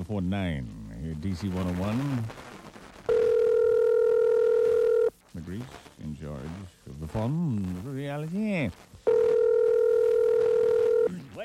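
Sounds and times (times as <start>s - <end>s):
speech: 0.1s - 2.4s, 5.3s - 9.2s
telephone dial tone while dialing a number: 3.1s - 5.1s, 9.1s - 11.1s.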